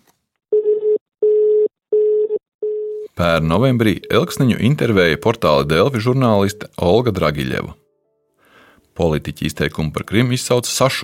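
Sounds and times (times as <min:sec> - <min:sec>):
telephone ringing tone of an unanswered call: 0:00.5 - 0:03.1
speech: 0:03.2 - 0:07.8, 0:09.0 - 0:11.0.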